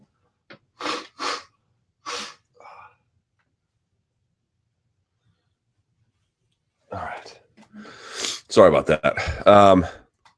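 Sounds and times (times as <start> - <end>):
nose blowing: 0.8 - 2.5, 7.8 - 8.5
speech: 8.5 - 10.0.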